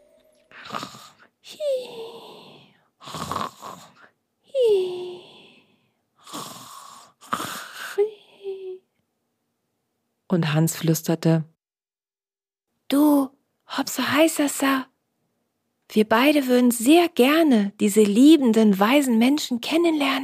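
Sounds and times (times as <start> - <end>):
voice imitating soft snoring of a sleeping marmot: 0.5 - 8.0
speech: 10.3 - 11.5, 13.9 - 14.9, 15.9 - 20.2.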